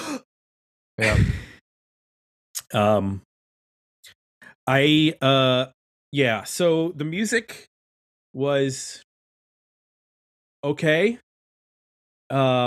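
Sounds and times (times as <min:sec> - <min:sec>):
speech: 0:01.0 - 0:01.5, 0:02.7 - 0:03.3, 0:04.7 - 0:07.7, 0:08.4 - 0:09.0, 0:10.6 - 0:11.2, 0:12.3 - 0:12.6
person imitating a singer's sharp breath intake before singing: 0:01.0 - 0:01.6.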